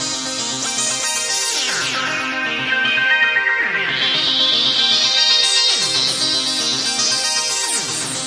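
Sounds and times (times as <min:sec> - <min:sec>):
hypno synth loop: 0:00.0 - 0:08.2.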